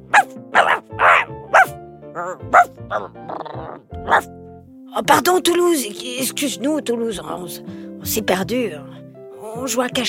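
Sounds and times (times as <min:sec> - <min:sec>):
dog barking in its kennel: 0:00.1 - 0:03.2, 0:04.0 - 0:04.3
dog whining yelps in its kennel: 0:00.2 - 0:04.3
speech: 0:02.3 - 0:04.2, 0:05.0 - 0:09.0, 0:09.6 - 0:10.0.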